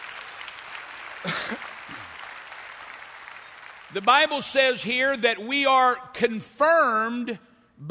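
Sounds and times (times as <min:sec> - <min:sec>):
crowd applauding: 0:00.0 - 0:04.7
speech: 0:03.9 - 0:07.8.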